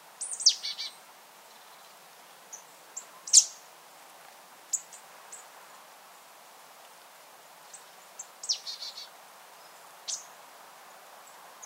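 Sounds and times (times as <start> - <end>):
quiet steady background hiss: 0.0 - 11.6
marsh tit Poecile palustris calls: 2.5 - 3.6, 8.4 - 9.1.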